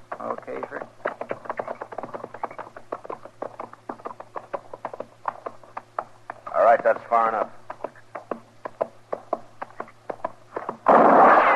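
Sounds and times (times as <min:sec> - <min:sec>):
low steady hum: 0:00.0 - 0:11.5
speech: 0:06.7 - 0:07.6
gunshots in a shootout near a fire: 0:10.8 - 0:11.5.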